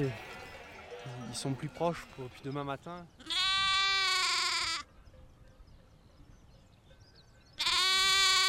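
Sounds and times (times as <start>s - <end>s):
speech: 0.0s - 0.2s, 1.0s - 3.4s
lamb bleating: 3.2s - 4.9s, 7.6s - 8.4s.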